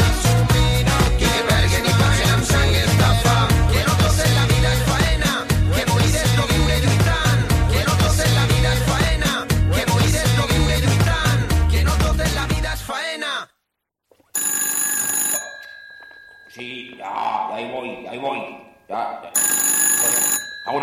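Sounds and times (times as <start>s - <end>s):
music: 0.0s - 12.9s
telephone bell ringing: 14.4s - 16.6s, 18.6s - 20.8s.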